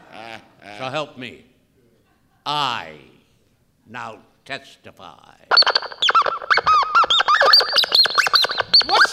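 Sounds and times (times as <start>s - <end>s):
speech: 0.8s - 1.5s, 2.4s - 3.2s, 3.9s - 6.0s
high-pitched squeaks: 5.5s - 9.1s.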